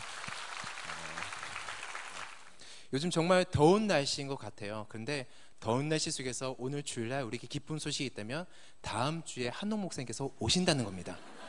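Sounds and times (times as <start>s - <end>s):
room full of people applauding: 0.0s - 2.6s
speech: 2.9s - 11.4s.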